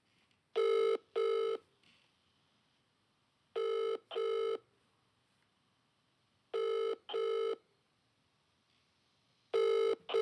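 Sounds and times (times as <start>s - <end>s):
outgoing phone call ringback tone: 0.6s - 1.6s, 3.6s - 4.6s, 6.6s - 7.6s, 9.6s - 10.2s.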